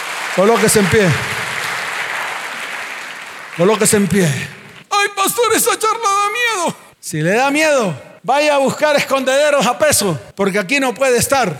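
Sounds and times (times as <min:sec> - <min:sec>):
congregation applauding: 0:00.0 - 0:04.9
speech: 0:00.4 - 0:01.4, 0:03.6 - 0:11.5.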